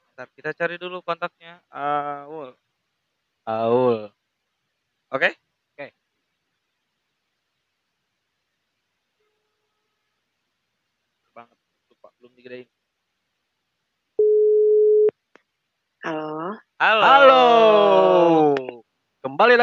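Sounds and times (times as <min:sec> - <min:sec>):
speech: 0:00.2 - 0:02.6, 0:03.4 - 0:04.2, 0:05.1 - 0:06.0, 0:12.4 - 0:12.8, 0:16.0 - 0:19.6
phone ringback tone before connecting: 0:14.2 - 0:15.1.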